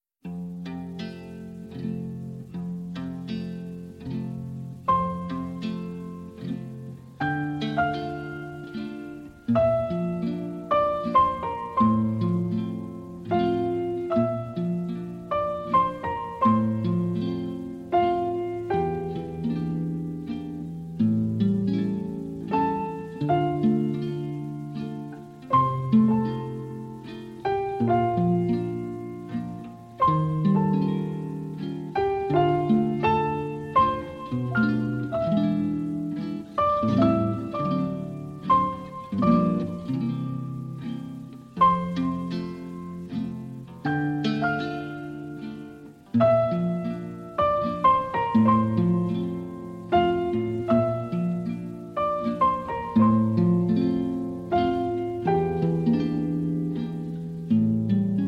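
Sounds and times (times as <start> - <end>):
piano: 0.1 - 58.2
guitar: 0.2 - 58.2.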